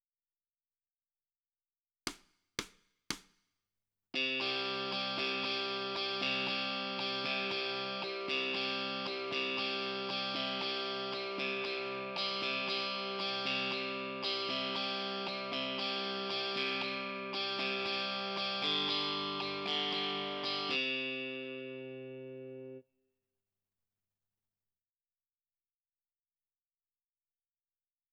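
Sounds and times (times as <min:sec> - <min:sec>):
guitar in left channel: 0:04.2 - 0:22.8.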